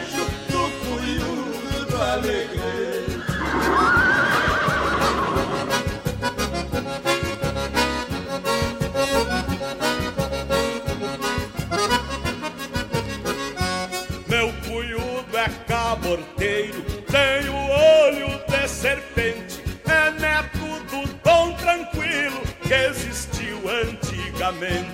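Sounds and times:
rhythmic music with a driving beat: 0.0 - 24.9
speech: 2.1 - 2.8
loud horse whinny: 3.0 - 6.2.

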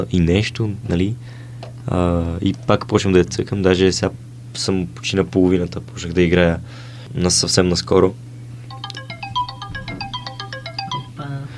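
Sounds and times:
speech: 0.0 - 8.2
steady low hum: 0.0 - 11.5
phone electronic notification tune for an incoming message: 8.7 - 11.3.

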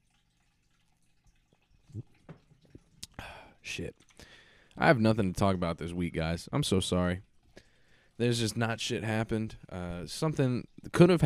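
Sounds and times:
liquid sloshing: 0.0 - 4.8
person gulping and swallowing water: 0.1 - 4.8
speech: 3.6 - 4.2, 4.8 - 7.3, 8.2 - 11.2.

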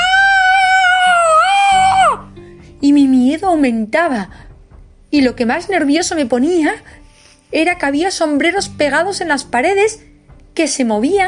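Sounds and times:
person screaming in fear: 0.0 - 2.3
speech: 3.6 - 4.5, 5.1 - 11.2.

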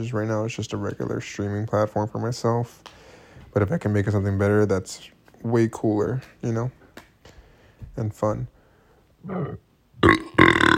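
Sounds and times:
speech: 0.0 - 6.8, 7.9 - 8.6, 9.2 - 10.3
person burping after drinking carbonated water: 9.2 - 10.7.

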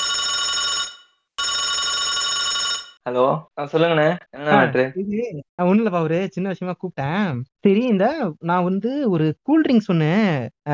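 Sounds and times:
electronic phone line ringing on an outgoing call: 0.0 - 3.0
speech: 3.1 - 10.7.

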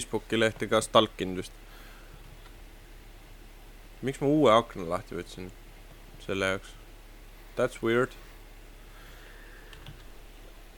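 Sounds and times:
speech: 0.0 - 1.8, 4.0 - 5.6, 6.2 - 6.8, 7.6 - 8.2
low hiss: 0.0 - 10.7
faint typing on a computer keyboard: 9.7 - 10.1.

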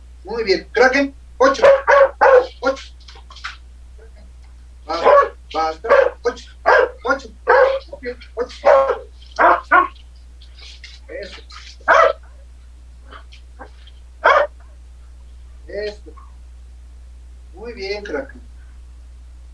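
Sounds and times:
low steady hum: 0.0 - 19.5
speech: 0.2 - 3.0, 4.9 - 7.4, 8.0 - 9.5
person giving spoken training commands at home: 0.3 - 4.2, 4.9 - 9.9, 10.8 - 11.9, 15.7 - 16.1
dog barking and yipping while being trained at home: 1.4 - 3.6, 4.9 - 10.0, 10.6 - 12.3, 13.1 - 14.7.

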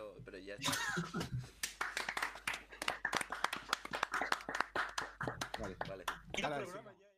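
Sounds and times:
speech: 0.4 - 1.3, 6.4 - 7.0
laughter: 0.6 - 1.6
small group of people clapping hands: 1.2 - 6.6.

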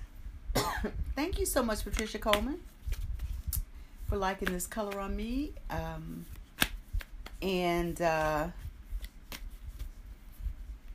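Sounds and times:
speech: 0.8 - 3.0, 4.1 - 6.4, 7.4 - 8.6
deck of cards being shuffled: 1.9 - 3.6, 4.3 - 5.2, 6.1 - 7.6, 8.5 - 10.9.

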